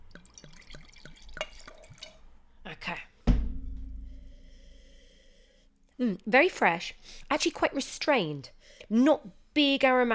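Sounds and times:
white wine glugging from a bottle into a glass: 0:00.1 - 0:02.2
speech: 0:06.0 - 0:10.1.

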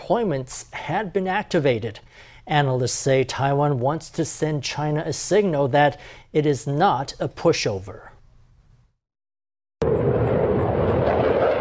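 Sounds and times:
speech: 0:00.1 - 0:08.1
F-16V fighter jet carrying a payload taking off from a base in Jiayi: 0:09.8 - 0:11.5.

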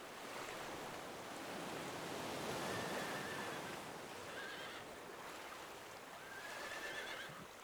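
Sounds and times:
sea surf roaring: 0:00.2 - 0:05.1
horses swimming in the sea whinnying: 0:02.6 - 0:05.0, 0:06.2 - 0:07.4.

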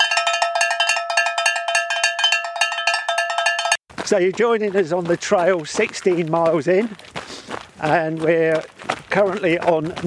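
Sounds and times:
cowbells clanking on a hiking trail: 0:00.0 - 0:03.8
speech: 0:04.1 - 0:07.2, 0:07.8 - 0:10.0.

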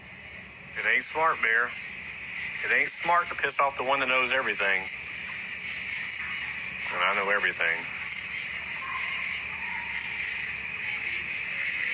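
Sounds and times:
crickets chirping: 0:00.0 - 0:11.9
speech: 0:00.8 - 0:01.9, 0:02.6 - 0:05.0, 0:06.9 - 0:07.9.

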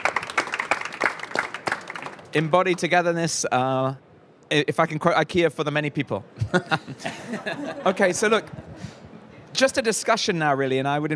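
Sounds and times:
audience applause: 0:00.0 - 0:02.3
speech: 0:02.3 - 0:09.0, 0:09.6 - 0:11.1
laughter: 0:06.4 - 0:09.0.

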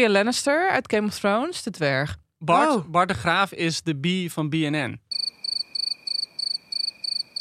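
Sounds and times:
speech: 0:00.0 - 0:05.0
crickets chirping: 0:05.1 - 0:07.3.

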